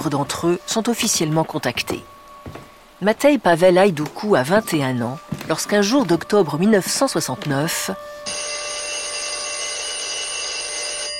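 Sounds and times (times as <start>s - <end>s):
speech: 0.0s - 8.6s
telephone ringing with a steady electronic tone: 7.7s - 11.1s.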